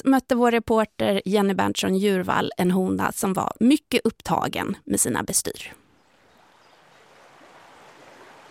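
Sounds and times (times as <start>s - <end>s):
speech: 0.0s - 5.8s
flowing stream rushing and babbling while wading: 5.9s - 8.4s.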